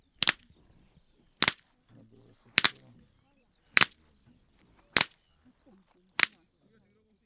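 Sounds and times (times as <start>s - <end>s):
karikás whip cracking on the Hortobágy puszta: 0.0s - 3.0s, 3.6s - 6.4s.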